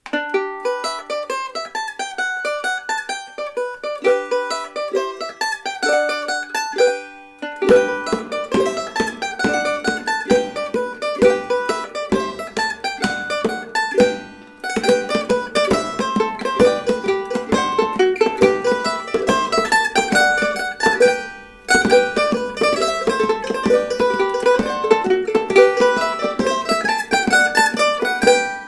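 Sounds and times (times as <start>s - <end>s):
tune played on a cavaquinho, small Portuguese string instrument: 0.0s - 28.6s.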